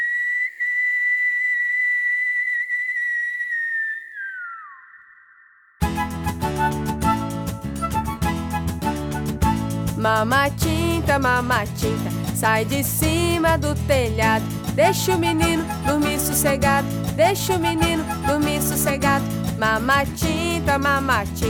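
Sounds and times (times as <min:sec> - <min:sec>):
long piercing whistle: 0:00.0 - 0:09.8, 0:15.2 - 0:16.8, 0:17.5 - 0:19.2
rhythmic music: 0:05.8 - 0:21.4
speech: 0:10.0 - 0:21.4.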